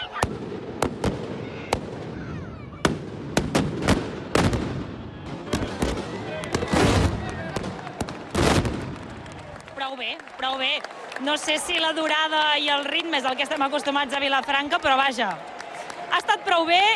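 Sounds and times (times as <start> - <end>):
tronada firecracker barrage exploding in a square: 0.0 - 9.4
rumbling crowd noise: 0.0 - 16.9
speech: 9.9 - 15.5, 16.1 - 16.9.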